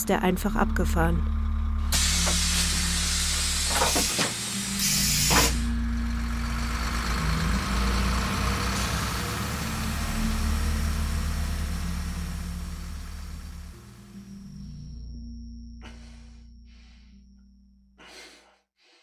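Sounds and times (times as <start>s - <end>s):
speech: 0.0s - 2.0s
bus engine idling: 0.0s - 14.5s
bus air brakes hissing: 1.9s - 5.8s.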